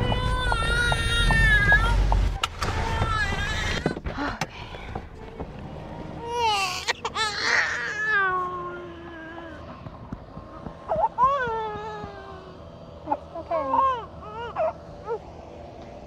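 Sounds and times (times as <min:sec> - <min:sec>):
toddler crying: 0:00.1 - 0:04.0, 0:06.2 - 0:09.8, 0:10.9 - 0:12.6, 0:13.1 - 0:15.2.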